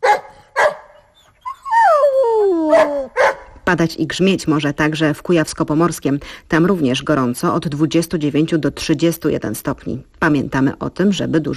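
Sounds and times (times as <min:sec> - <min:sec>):
dogs barking in reaction to a thunderstorm: 0:00.0 - 0:01.4, 0:02.7 - 0:03.6
dog whining in reaction to a thunderstorm: 0:00.0 - 0:03.5
speech: 0:03.7 - 0:11.5.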